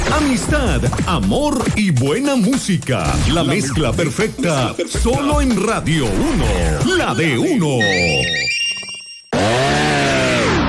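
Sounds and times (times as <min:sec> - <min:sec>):
speech: 0:00.1 - 0:08.6
brief electronic jingle: 0:07.7 - 0:09.4
chainsaw engine roaring at full throttle: 0:09.3 - 0:10.6.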